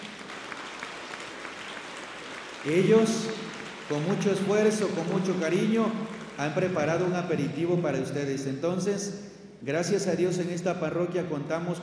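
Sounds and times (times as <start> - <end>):
audience applauding: 0.0 - 7.2
speech: 2.6 - 11.8.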